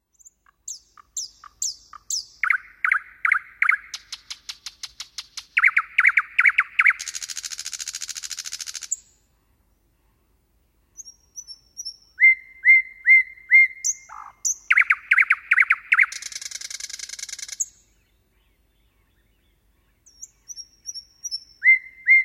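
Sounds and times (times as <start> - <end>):
common nightingale singing varied phrases: 0.1 - 9.3, 10.9 - 22.2.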